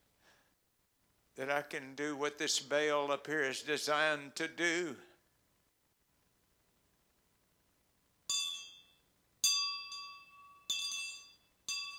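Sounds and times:
speech: 1.4 - 5.1
small bell ringing: 8.3 - 11.9.

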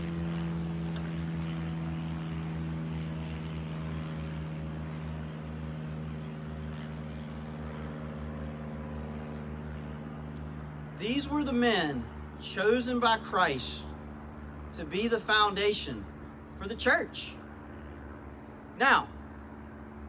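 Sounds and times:
aircraft engine roar overhead: 0.0 - 20.0
speech: 11.0 - 13.9, 14.8 - 17.4, 18.8 - 19.1.

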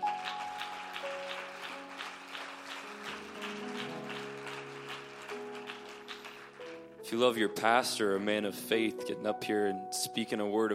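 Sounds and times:
church audience clapping: 0.0 - 7.0
sustained organ chords: 0.0 - 9.2
speech: 7.1 - 10.7.

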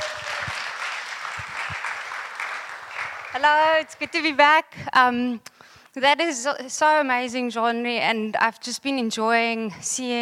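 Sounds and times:
audience applause: 0.0 - 4.3
speech: 3.4 - 10.1.

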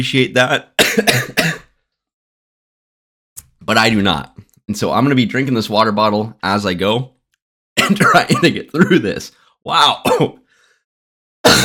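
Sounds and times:
speech: 0.0 - 1.7, 3.7 - 7.2, 7.8 - 10.4
man with a lung ailment clearing throat: 0.8 - 1.7, 7.8 - 8.6, 10.0 - 10.4, 11.4 - 11.6
man with a lung ailment coughing: 0.8 - 1.8, 7.8 - 9.0, 10.0 - 10.4, 11.4 - 11.6.

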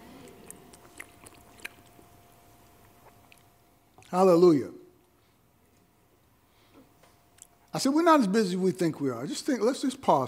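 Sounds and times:
sipping water: 0.0 - 4.2
low steady room hum: 0.0 - 10.2
speech: 4.1 - 4.8, 7.8 - 10.2.

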